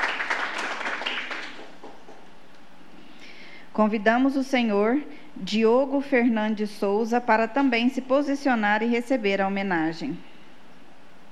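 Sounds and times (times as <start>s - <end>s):
crowd applauding at a ceremony: 0.0s - 2.3s
speech: 3.8s - 10.3s.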